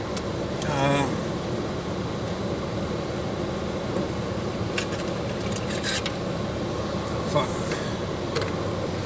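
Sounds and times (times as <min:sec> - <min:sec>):
car heater blowing to thaw the car's interior: 0:00.0 - 0:09.0.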